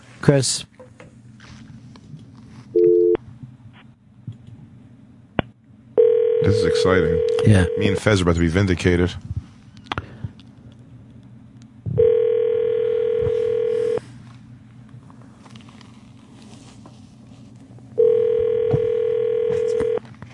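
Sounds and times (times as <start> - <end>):
speech: 0.2 - 0.7, 6.6 - 9.3
phone call ringback tones on speakerphone: 2.8 - 3.2, 6.0 - 8.0, 12.0 - 14.0, 18.0 - 20.0.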